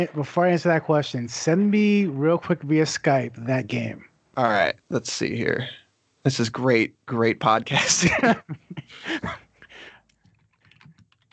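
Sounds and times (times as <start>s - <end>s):
speech: 0.0s - 9.4s
laughter: 7.5s - 9.4s
mechanical keyboard typing: 10.3s - 11.3s.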